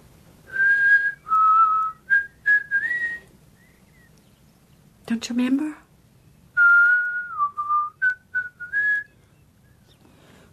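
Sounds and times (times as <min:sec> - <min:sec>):
person whistling a short clear five-note tune: 0:00.5 - 0:03.3, 0:06.6 - 0:09.2
speech: 0:05.1 - 0:05.8.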